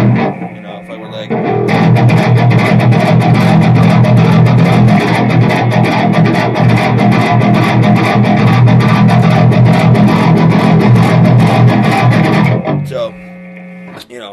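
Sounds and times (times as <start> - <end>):
fanned-fret electric guitar with heavy distortion on front pickup: 0.0 - 14.2.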